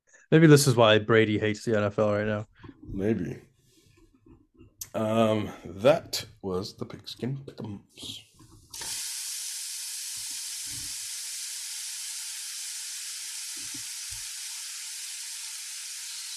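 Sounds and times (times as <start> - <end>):
speech: 0.3 - 3.5, 5.0 - 9.0
food frying: 8.7 - 16.3.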